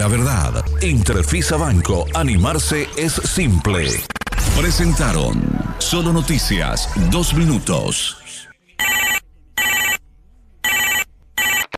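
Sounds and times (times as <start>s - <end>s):
speech: 0.0s - 8.2s
electronic telephone ringing in a radio advert: 8.8s - 10.0s, 10.6s - 11.7s.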